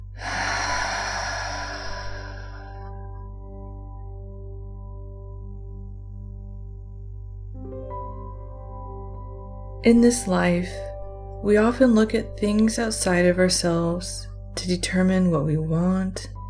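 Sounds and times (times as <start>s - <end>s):
deep breath in through the nose and out through the mouth during a guided meditation: 0.0s - 3.4s
soft sustained low drone: 0.0s - 16.4s
speech: 9.8s - 16.4s.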